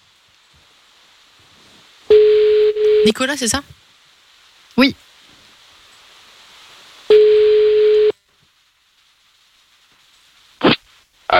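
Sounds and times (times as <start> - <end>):
faint telephone line hiss: 0.0 - 11.3
telephone ringing tone while placing a call: 2.1 - 3.2, 7.1 - 8.1
speech: 3.0 - 3.8.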